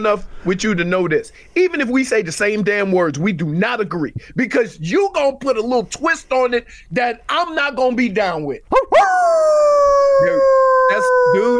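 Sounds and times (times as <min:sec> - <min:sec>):
speech: 0:00.0 - 0:11.5
person imitating a wolf howl: 0:08.9 - 0:11.5.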